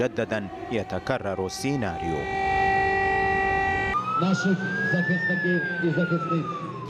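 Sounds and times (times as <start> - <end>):
speech: 0.0 - 2.5, 4.2 - 6.6
steady droning tone: 0.0 - 4.7
air raid warning siren wailing: 0.0 - 6.8.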